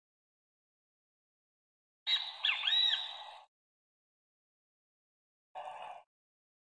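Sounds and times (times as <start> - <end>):
great kiskadee calling: 2.1 - 3.5.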